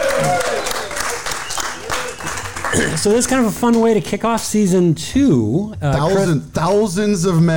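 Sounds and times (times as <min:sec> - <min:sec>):
group of people applauding: 0:00.0 - 0:04.1
speech: 0:03.0 - 0:07.5.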